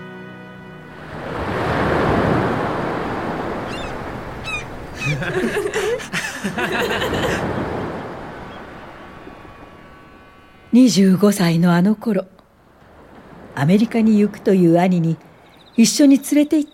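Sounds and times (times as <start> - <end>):
surf washing onto a beach on the coast at Handa: 1.0 - 10.7
faint bird-like chirps: 3.6 - 5.4, 15.3 - 16.7
soft voices or laughter: 4.9 - 7.6
speech: 5.0 - 7.6, 10.8 - 12.4, 13.6 - 16.7.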